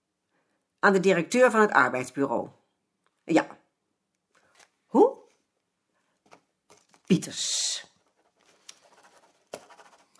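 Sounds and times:
speech: 0.8s - 2.6s, 3.3s - 3.5s, 7.2s - 7.6s
pen writing a note on paper: 8.1s - 10.1s.

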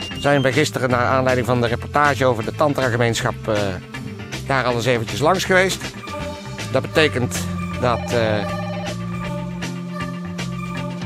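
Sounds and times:
speech: 0.2s - 8.6s
telephone ringing with buzzing electronic tone: 7.4s - 11.0s.

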